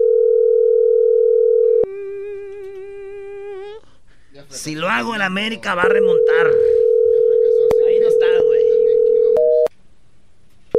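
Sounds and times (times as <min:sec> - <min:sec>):
steady telephone line tone: 0:00.0 - 0:01.9, 0:05.8 - 0:09.7
speech: 0:04.5 - 0:06.7.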